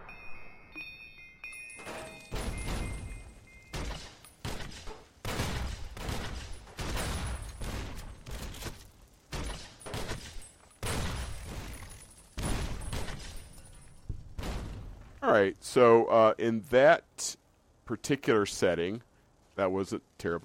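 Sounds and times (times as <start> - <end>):
video game time grenades exploding: 2.1 - 13.6
speech: 15.3 - 20.4.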